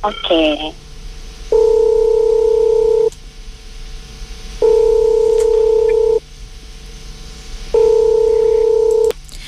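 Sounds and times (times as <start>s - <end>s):
speech: 0.0s - 0.8s
telephone line tone beeps while placing a call: 1.6s - 3.1s, 4.6s - 6.2s, 7.8s - 9.1s.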